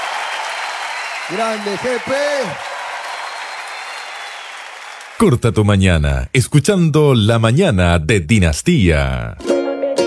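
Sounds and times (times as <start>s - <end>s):
audience applause: 0.0s - 5.4s
speech: 1.3s - 2.7s, 5.2s - 10.0s.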